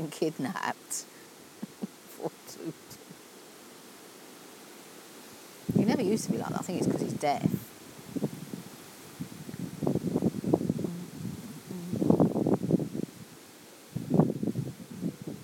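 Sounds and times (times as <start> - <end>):
speech: 0.1 - 1.2, 2.2 - 3.0, 6.0 - 7.7
strong wind gusting outdoors: 5.6 - 13.3, 13.9 - 15.4.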